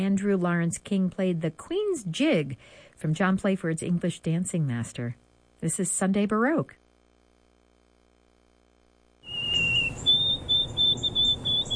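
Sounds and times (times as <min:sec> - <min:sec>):
speech: 0:00.0 - 0:06.8
faint noise: 0:00.0 - 0:11.7
white-throated sparrow singing clear high whistled notes: 0:09.2 - 0:11.7.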